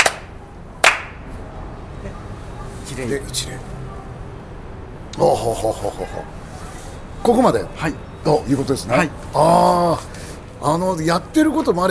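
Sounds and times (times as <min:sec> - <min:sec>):
ritual hand claps at a Shinto shrine: 0:00.0 - 0:01.2
speech: 0:03.0 - 0:03.8, 0:05.2 - 0:06.4, 0:07.2 - 0:11.8.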